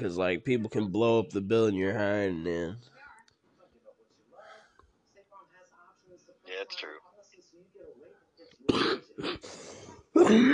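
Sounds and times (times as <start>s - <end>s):
speech: 0.0s - 3.0s, 6.6s - 7.0s, 8.7s - 9.6s, 10.2s - 10.5s
harsh throaty coughs: 8.7s - 10.5s.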